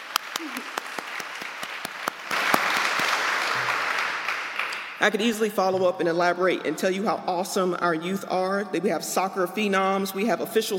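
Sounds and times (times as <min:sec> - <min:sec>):
crowd applauding: 0:00.0 - 0:05.0
speech: 0:05.0 - 0:10.7.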